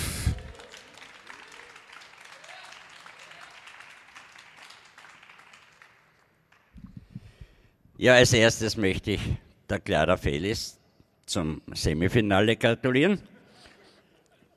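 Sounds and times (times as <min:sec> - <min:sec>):
crowd applauding: 0:00.0 - 0:07.3
speech: 0:08.0 - 0:13.3.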